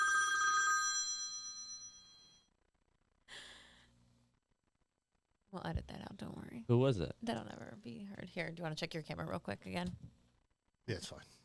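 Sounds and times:
mobile phone ringtone: 0:00.0 - 0:02.4
speech: 0:05.5 - 0:10.2, 0:10.9 - 0:11.4.

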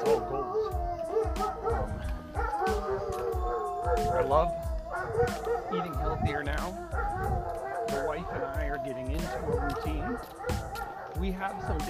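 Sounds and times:
several dogs barking and howling: 0:00.0 - 0:11.8
speech: 0:04.0 - 0:11.8.

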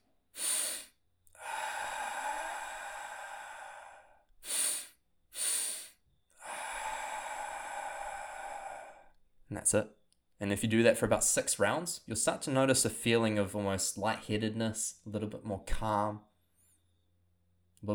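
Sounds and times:
short sharp sniffing inhales through the nose or mouth: 0:00.4 - 0:09.1
long steady breathy exhale in a breathing exercise: 0:00.4 - 0:09.2
speech: 0:09.5 - 0:16.3.

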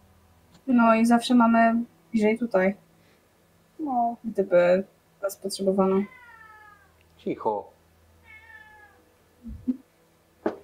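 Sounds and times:
speech: 0:00.7 - 0:02.8, 0:03.9 - 0:06.2, 0:07.2 - 0:07.7
cat meowing: 0:05.9 - 0:07.0, 0:08.2 - 0:09.0.

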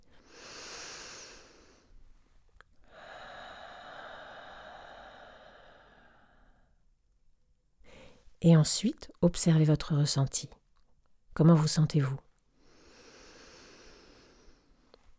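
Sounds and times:
breathing in through the nose: 0:00.1 - 0:02.0, 0:02.9 - 0:06.7, 0:12.6 - 0:14.9
speech: 0:08.4 - 0:10.6, 0:11.4 - 0:12.2.

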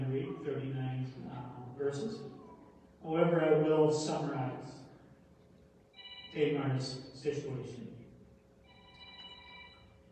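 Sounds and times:
speech: 0:00.0 - 0:04.8, 0:06.3 - 0:08.0
phone ringtone with electronic trill in the audience: 0:06.0 - 0:06.4, 0:08.7 - 0:10.0.

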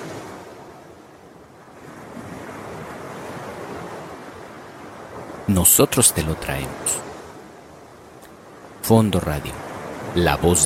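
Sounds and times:
ocean waves breaking on a shore: 0:00.0 - 0:10.6
speech: 0:05.5 - 0:07.1, 0:08.9 - 0:10.6.

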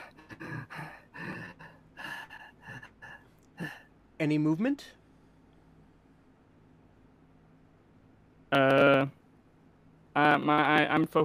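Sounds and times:
voice imitating a creature's heavy rasping breathing: 0:00.0 - 0:03.9
speech: 0:04.2 - 0:05.0, 0:10.5 - 0:11.2.

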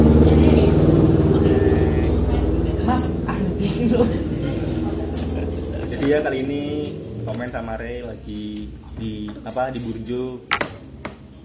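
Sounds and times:
motorcycle engine rumbling: 0:00.0 - 0:11.4
laughter: 0:01.3 - 0:07.2
speech: 0:06.1 - 0:10.8.

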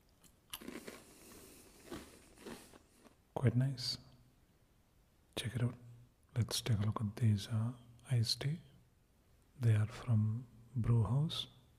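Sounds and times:
crunchy chocolate snack with white chocolate cream bitten: 0:00.2 - 0:03.2
speech: 0:03.4 - 0:04.0, 0:05.4 - 0:05.8, 0:06.4 - 0:08.7, 0:09.6 - 0:11.6.

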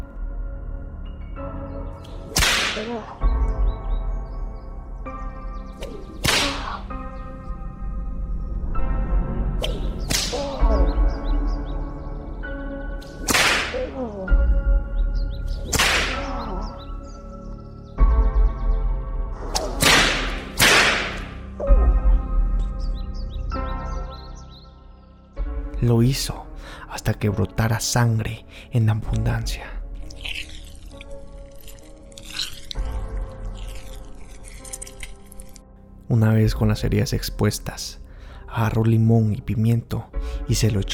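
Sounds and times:
steady droning musical background: 0:00.0 - 0:40.9
whip lashes striking a back: 0:02.2 - 0:03.1, 0:05.8 - 0:06.8, 0:09.6 - 0:10.6, 0:13.0 - 0:14.0, 0:15.6 - 0:16.4, 0:19.4 - 0:21.4
speech: 0:02.8 - 0:03.4, 0:25.9 - 0:26.4, 0:27.0 - 0:29.7, 0:36.1 - 0:38.0, 0:38.6 - 0:40.9.

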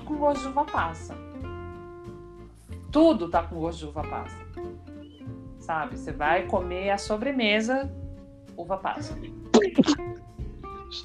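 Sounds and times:
speech: 0:00.2 - 0:01.3, 0:02.9 - 0:04.9, 0:05.6 - 0:08.0, 0:08.6 - 0:10.2
stifled sneeze: 0:09.5 - 0:10.0.

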